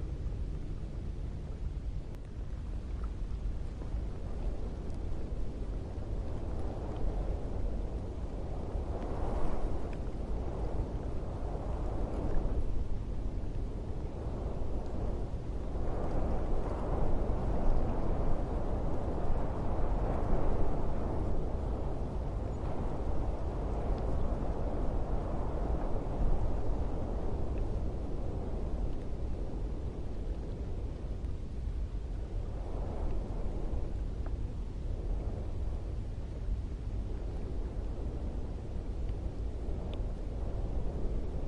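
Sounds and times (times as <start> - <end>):
steady wind roaring low over sand: 0.0 - 41.4.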